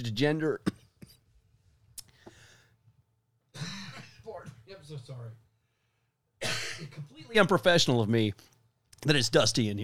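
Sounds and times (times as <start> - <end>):
speech: 0.0 - 0.8, 6.8 - 9.8
man coughing: 3.5 - 4.6, 6.4 - 7.2
man clearing throat: 3.6 - 4.6, 6.4 - 7.1.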